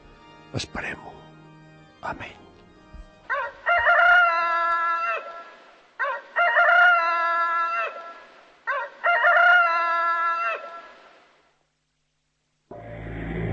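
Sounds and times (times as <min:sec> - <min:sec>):
speech: 0:00.5 - 0:01.4, 0:02.0 - 0:02.5
rooster crowing: 0:03.3 - 0:11.0.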